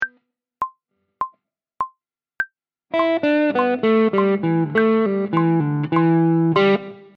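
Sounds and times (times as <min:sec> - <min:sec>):
blues guitar licks: 0:02.9 - 0:07.1.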